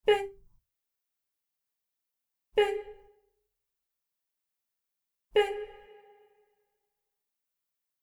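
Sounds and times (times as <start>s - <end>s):
woman's voice singing a note, dry to reverberant: 0.0s - 0.4s, 5.4s - 5.9s.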